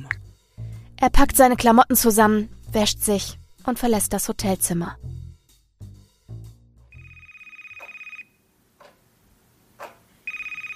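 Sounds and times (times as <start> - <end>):
speech: 1.0 - 5.1
telephone ringing with fast trilling electronic tone: 6.9 - 8.4, 10.3 - 10.7.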